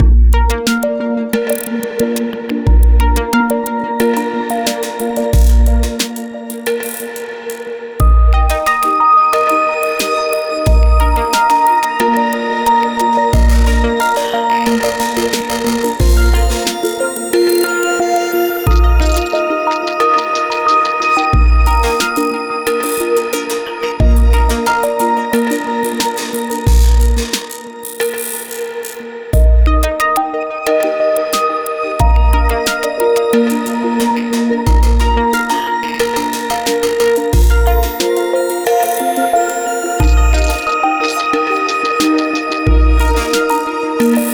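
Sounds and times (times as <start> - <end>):
ambient electro music: 0.0 - 44.3
glitch beats: 10.7 - 11.7, 13.4 - 28.4, 32.0 - 44.3.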